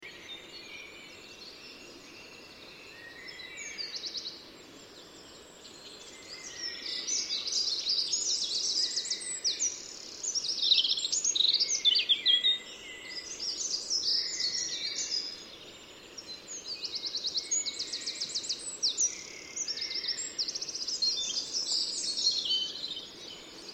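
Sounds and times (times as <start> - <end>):
steady background hiss: 0.1 - 23.7
Eurasian wren singing, Troglodytes troglodytes: 5.1 - 23.7.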